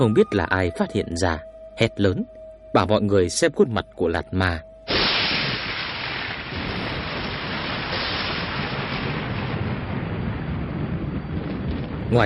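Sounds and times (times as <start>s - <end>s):
speech: 0.0s - 4.7s
deep continuous rumbling thunder outside a ruined ancient fortress after rain: 4.9s - 12.2s.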